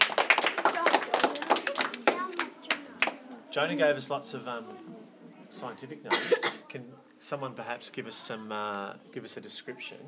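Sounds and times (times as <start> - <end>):
small group clapping: 0.0 - 3.3
speech: 3.6 - 10.0.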